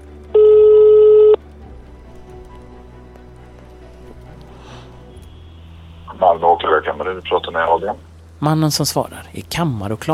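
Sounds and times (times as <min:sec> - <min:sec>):
telephone ring tone of a call to a prosecutor's office in Malmö: 0:00.4 - 0:01.4
speech: 0:06.2 - 0:10.1.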